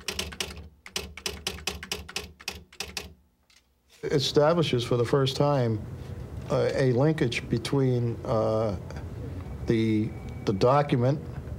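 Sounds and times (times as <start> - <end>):
mechanical typewriter key strikes: 0.0 - 3.2
speech: 4.0 - 9.0, 9.7 - 11.3.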